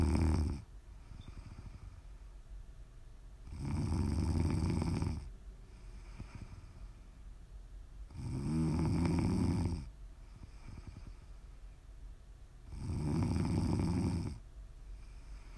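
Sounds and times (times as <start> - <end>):
deep snoring: 0.0 - 1.9, 3.4 - 5.3, 8.1 - 11.2, 12.7 - 14.4, 15.0 - 15.5
soft breathing: 0.9 - 2.4, 5.6 - 7.4, 10.1 - 11.9, 14.8 - 15.5.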